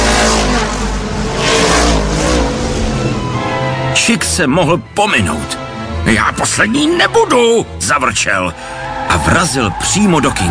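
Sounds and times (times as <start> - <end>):
race car engine revving and accelerating: 0.0 - 4.0
speech: 4.1 - 10.4.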